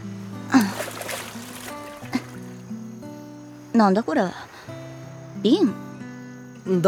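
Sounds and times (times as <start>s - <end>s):
water splashing: 0.4s - 2.7s
waves washing ashore: 0.5s - 2.6s
speech: 3.8s - 4.4s, 5.4s - 5.8s, 6.6s - 6.8s.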